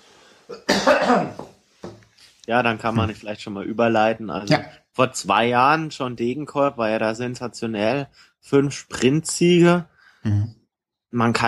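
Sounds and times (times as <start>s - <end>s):
speech: 0.5s - 1.4s, 2.5s - 11.4s
person coughing harshly: 0.5s - 1.5s.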